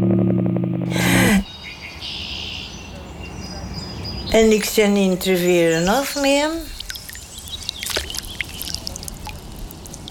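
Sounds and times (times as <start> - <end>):
faint birds chirping: 1.1 - 10.0
speech: 4.3 - 6.7
water trickling and dripping in a park river: 5.8 - 10.0.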